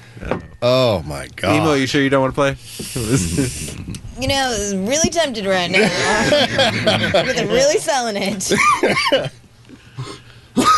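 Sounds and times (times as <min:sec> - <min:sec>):
speech: 0:00.2 - 0:09.4
laughter: 0:05.6 - 0:09.4
person coughing: 0:10.0 - 0:10.7.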